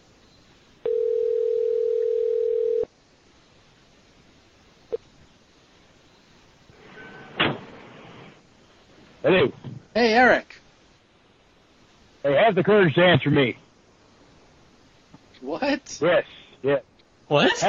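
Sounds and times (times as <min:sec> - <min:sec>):
noisy telephone line static: 0:00.0 - 0:17.6
telephone dialing tone: 0:00.8 - 0:02.9
speech: 0:09.2 - 0:10.6, 0:12.2 - 0:13.6, 0:15.5 - 0:17.6.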